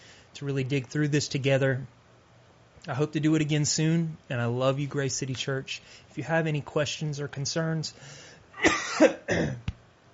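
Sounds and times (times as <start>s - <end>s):
speech: 0.4s - 2.0s, 2.8s - 9.6s
short dry coughs from a tickle in the throat: 8.6s - 9.7s.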